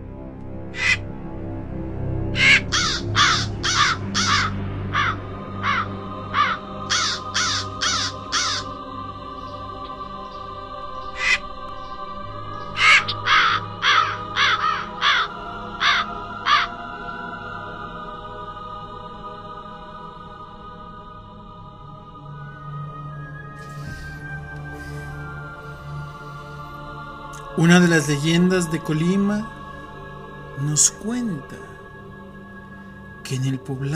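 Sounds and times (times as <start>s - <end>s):
crow cawing: 0.7s - 1.0s, 2.4s - 8.9s, 11.0s - 11.5s, 12.6s - 16.8s
speech: 27.6s - 29.6s, 30.6s - 31.8s, 33.3s - 33.9s.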